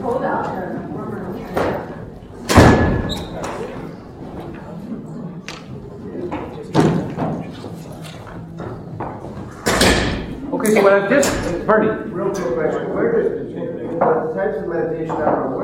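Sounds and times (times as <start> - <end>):
faint room noise: 0.0 - 15.6
door swinging shut with a solid thud: 2.5 - 3.5
speech: 10.7 - 13.4, 14.0 - 15.6.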